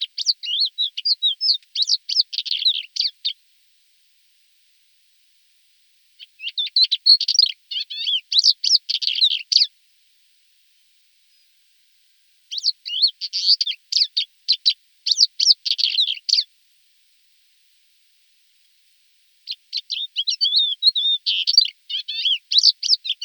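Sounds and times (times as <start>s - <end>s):
Thekla's lark singing: 0.0s - 3.4s, 6.2s - 9.7s, 12.5s - 16.5s, 19.5s - 23.2s.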